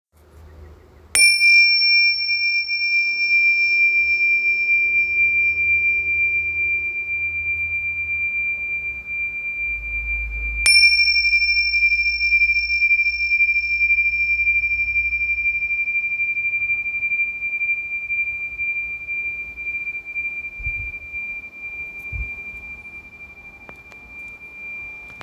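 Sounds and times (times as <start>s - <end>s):
medium bronze Tibetan cymbals: 0.8s - 25.2s.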